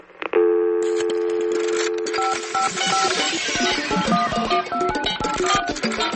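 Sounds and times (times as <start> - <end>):
sustained electronic tone: 0.9 - 6.1
busy buzzing electronic background: 1.6 - 6.1.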